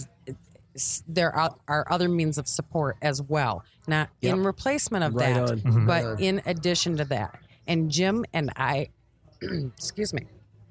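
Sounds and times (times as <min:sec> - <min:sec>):
speech: 0:00.3 - 0:10.4
person clearing throat in conversation: 0:05.5 - 0:06.2, 0:09.4 - 0:09.8.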